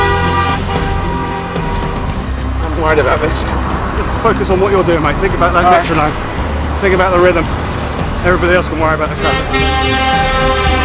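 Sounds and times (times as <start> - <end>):
car horns honking in congested traffic around Trafalgar Square: 0.0 - 3.7, 9.0 - 10.8
hum of idling traffic on congested streets: 0.0 - 10.8
speech: 2.9 - 7.6, 8.2 - 10.7.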